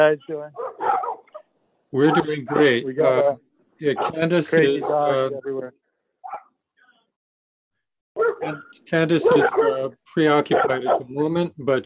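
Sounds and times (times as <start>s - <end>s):
speech: 0.0s - 0.9s, 1.9s - 5.8s, 8.2s - 11.8s
dog barking: 0.6s - 2.8s, 4.0s - 5.2s, 6.2s - 6.5s, 8.2s - 9.9s, 10.5s - 11.1s.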